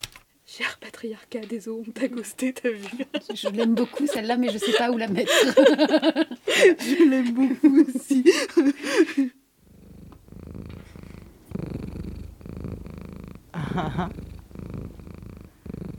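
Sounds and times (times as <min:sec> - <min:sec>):
speech: 0:00.6 - 0:09.4, 0:13.8 - 0:14.2
laughter: 0:02.7 - 0:09.3
cat purring: 0:09.6 - 0:15.9.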